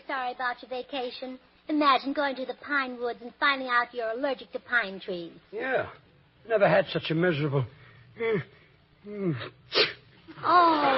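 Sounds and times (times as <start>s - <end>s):
speech: 0.1s - 10.9s
man sneezing: 8.2s - 10.1s.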